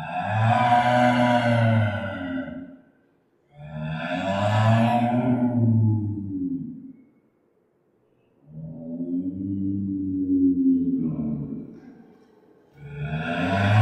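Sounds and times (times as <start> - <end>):
clouded leopard moaning roars: 0.0 - 2.7, 3.6 - 7.0, 8.5 - 11.8, 12.8 - 13.8.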